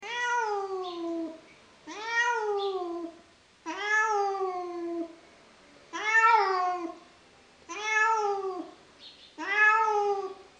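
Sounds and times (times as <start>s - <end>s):
cat: 0.0s - 5.2s, 5.9s - 7.0s, 7.7s - 8.8s, 9.4s - 10.4s.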